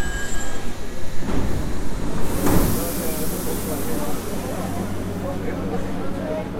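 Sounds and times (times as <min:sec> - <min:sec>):
faint squealing wheels of a metro train: 0:00.0 - 0:01.2
Mexico City metro train on Line 2 rumbling: 0:00.0 - 0:06.5.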